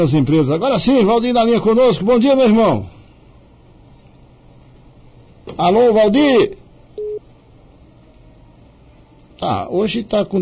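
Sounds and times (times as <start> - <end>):
speech: 0.0 - 3.0, 5.5 - 6.6, 9.4 - 10.4
telephone busy tone beep on a failed call: 7.0 - 7.2.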